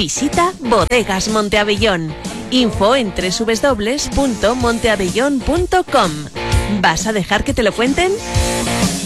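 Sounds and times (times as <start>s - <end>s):
speech: 0.0s - 8.9s
flies and mosquitoes buzzing indoors in warm weather: 1.2s - 6.7s.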